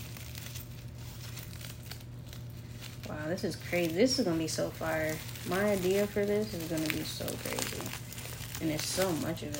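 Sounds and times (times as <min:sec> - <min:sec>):
crinkling of thin paper-like material being handled: 0:00.0 - 0:09.5
low hum: 0:00.0 - 0:09.5
speech: 0:03.1 - 0:09.5.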